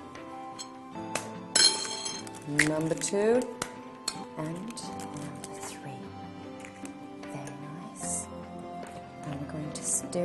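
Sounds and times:
fresh egg cracked and added to mashed potatoes: 0:01.1 - 0:05.7
speech: 0:02.5 - 0:03.7, 0:04.4 - 0:05.8, 0:09.5 - 0:10.1.

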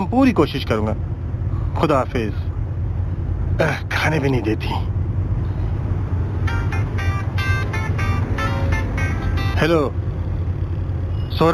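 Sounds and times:
heavy traffic rumbling: 0:00.0 - 0:11.5
speech: 0:00.1 - 0:01.1, 0:01.8 - 0:02.4, 0:03.6 - 0:05.0, 0:09.6 - 0:09.9
car horns honking: 0:06.4 - 0:10.0.

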